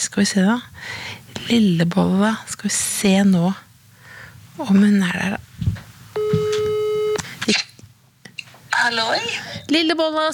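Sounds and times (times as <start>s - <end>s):
speech: 0.1s - 3.7s, 4.6s - 5.7s, 8.8s - 10.3s
telephone ringing tone on an outgoing call: 6.2s - 7.2s.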